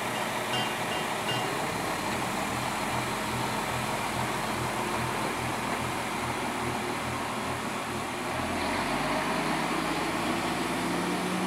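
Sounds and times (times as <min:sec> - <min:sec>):
train wheels rumbling on the tracks: 0:00.0 - 0:08.2
low steady train engine hum: 0:00.0 - 0:11.4.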